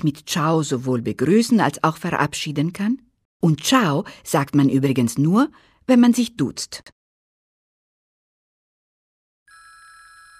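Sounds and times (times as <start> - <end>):
speech: 0.0 - 7.0
telephone bell ringing with a bright metallic trill: 9.5 - 10.3.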